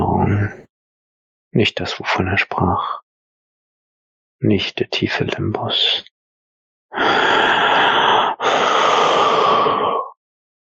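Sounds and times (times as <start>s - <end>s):
speech: 1.5s - 3.0s, 4.4s - 6.1s, 6.9s - 7.6s
deep breath: 6.9s - 10.2s.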